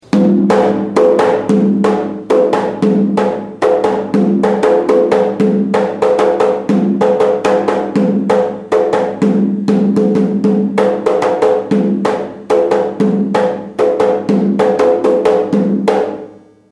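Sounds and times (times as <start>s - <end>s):
atabaque drum playing ijecha rhythm: 0.0s - 16.4s.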